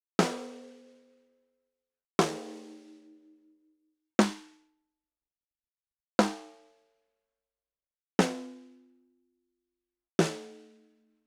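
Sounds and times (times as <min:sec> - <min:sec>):
Acrolite snare drum: 0:00.2 - 0:00.6, 0:02.2 - 0:03.0, 0:04.2 - 0:04.6, 0:08.2 - 0:08.7, 0:10.2 - 0:10.6.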